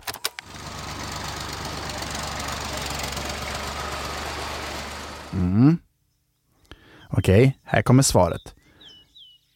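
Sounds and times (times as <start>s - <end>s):
tractor engine starting and running: 0.2s - 5.5s
speech: 5.3s - 5.8s, 7.2s - 8.6s.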